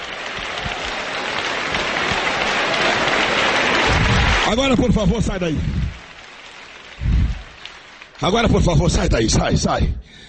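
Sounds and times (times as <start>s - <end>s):
audience applauding: 0.0s - 9.2s
speech: 4.5s - 6.0s, 8.2s - 10.2s.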